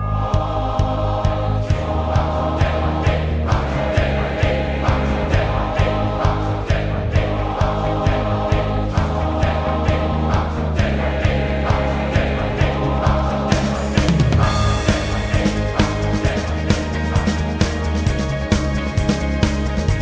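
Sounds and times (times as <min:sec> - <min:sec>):
crowd chant ringtone: 0:00.1 - 0:19.8.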